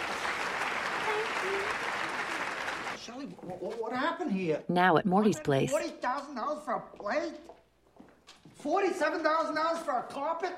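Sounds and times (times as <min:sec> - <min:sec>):
crowd applauding at an auction: 0:00.0 - 0:03.0
speech: 0:03.3 - 0:07.6, 0:08.6 - 0:10.5.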